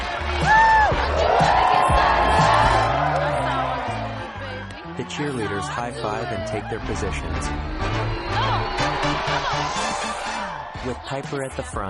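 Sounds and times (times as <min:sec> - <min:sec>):
large crowd in the stands cheering at a nighttime football game: 0:00.0 - 0:11.8
whoops and shouts: 0:00.4 - 0:04.4, 0:05.6 - 0:11.1
speech: 0:05.1 - 0:11.8.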